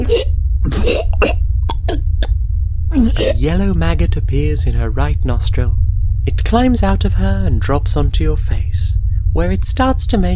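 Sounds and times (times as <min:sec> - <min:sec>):
woman choking and coughing: 0:00.0 - 0:02.3, 0:03.0 - 0:03.4
steady low rumble: 0:00.0 - 0:10.3
speech: 0:03.4 - 0:10.3.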